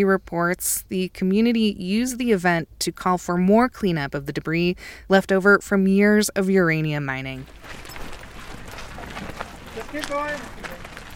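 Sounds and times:
speech: 0:00.0 - 0:07.8, 0:09.9 - 0:10.7
footsteps crunching on pale yellow dirt road: 0:07.2 - 0:11.1.

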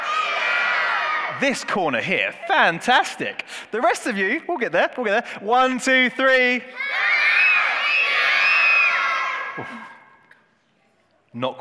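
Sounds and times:
group of children shouting and screaming together: 0:00.0 - 0:01.4, 0:06.7 - 0:10.2
speech: 0:01.4 - 0:06.8, 0:09.6 - 0:09.8, 0:11.4 - 0:11.6.

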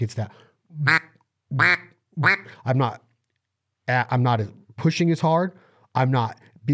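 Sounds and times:
speech: 0:00.0 - 0:03.0, 0:03.9 - 0:06.7
duck call quacking: 0:00.8 - 0:02.6.

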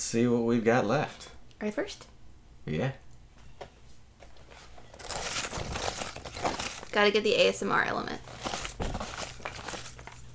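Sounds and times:
speech: 0:00.0 - 0:03.0, 0:07.0 - 0:08.4
low steady hum: 0:00.0 - 0:10.3
large sheet of paper crinkling: 0:04.7 - 0:07.6, 0:08.2 - 0:10.3.

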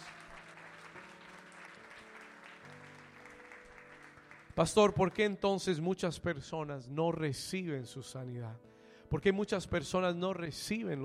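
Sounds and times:
audience applauding: 0:00.0 - 0:05.4
speech: 0:04.6 - 0:11.0.

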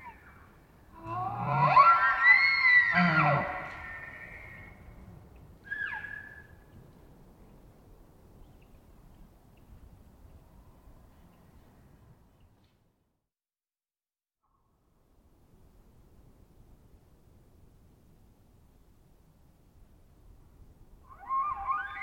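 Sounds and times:
wild elk bugling: 0:01.0 - 0:04.8, 0:21.1 - 0:22.0.

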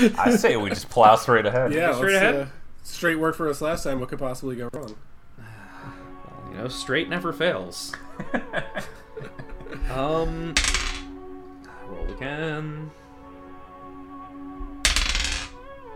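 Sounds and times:
speech: 0:00.0 - 0:10.8, 0:12.1 - 0:13.0
people chuckling: 0:08.0 - 0:10.5
dice clattering across a hard tabletop: 0:10.6 - 0:11.1, 0:14.8 - 0:15.6.

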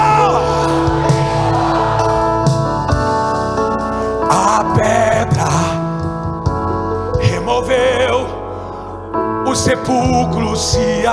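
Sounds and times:
audience shouting and cheering: 0:00.0 - 0:03.6
sustained organ-like music: 0:00.0 - 0:11.1
speech: 0:09.7 - 0:11.1.

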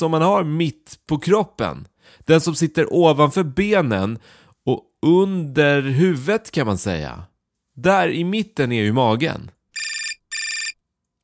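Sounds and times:
speech: 0:00.0 - 0:09.6
telephone ringing with bright electronic trills: 0:09.8 - 0:10.8.

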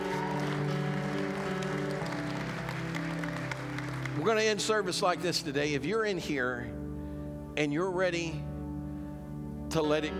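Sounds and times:
crowd clapping hands in praise: 0:00.0 - 0:05.0
sustained organ or keyboard chords: 0:00.0 - 0:10.1
speech: 0:04.2 - 0:06.8, 0:07.6 - 0:08.5, 0:09.7 - 0:10.1.

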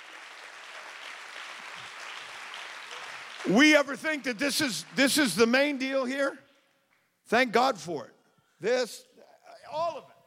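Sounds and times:
crowd clapping hands in sustained applause: 0:00.0 - 0:06.3
speech: 0:03.4 - 0:06.4, 0:07.3 - 0:09.1.

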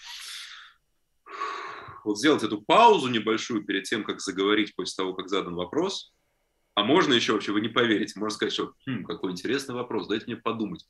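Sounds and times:
deep breath drawn in to demonstrate calming down: 0:00.0 - 0:02.1
speech: 0:02.0 - 0:06.2, 0:06.8 - 0:10.8.

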